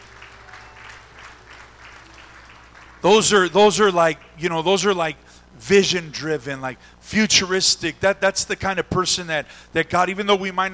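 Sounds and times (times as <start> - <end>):
crowd applauding: 0.0 - 4.4
speech: 3.0 - 10.7.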